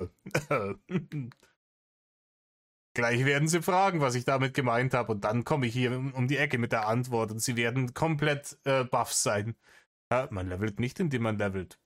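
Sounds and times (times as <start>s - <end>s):
person clearing throat: 0.0s - 1.4s
speech: 0.5s - 1.5s, 3.0s - 11.8s.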